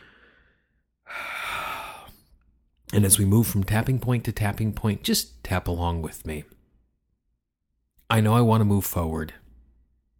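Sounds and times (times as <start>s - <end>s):
deep breath during a guided tapping exercise: 0.0s - 2.5s
speech: 3.0s - 6.6s, 8.1s - 9.4s.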